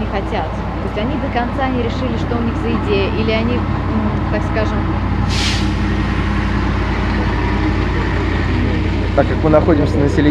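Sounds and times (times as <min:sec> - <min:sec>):
heavy vehicle engine drone outdoors: 0:00.0 - 0:10.2
speech: 0:00.1 - 0:05.4, 0:09.2 - 0:10.2
air brakes hiss: 0:05.2 - 0:05.9.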